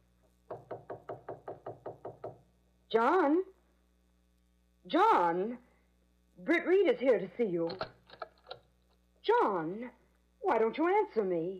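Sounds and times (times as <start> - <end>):
knuckles knocking on a study door: 0.5 - 2.4
speech: 2.9 - 3.5, 4.9 - 5.6, 6.4 - 8.0, 9.3 - 11.5.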